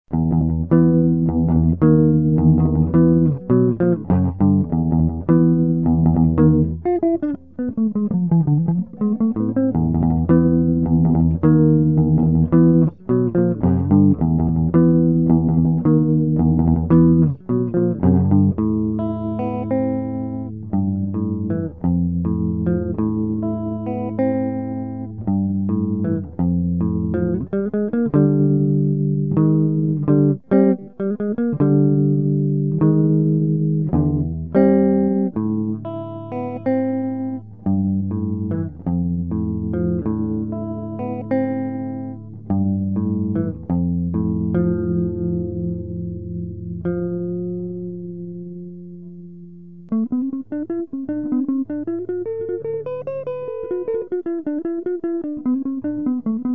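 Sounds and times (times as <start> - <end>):
modified electric guitar playing: 0.1 - 56.5.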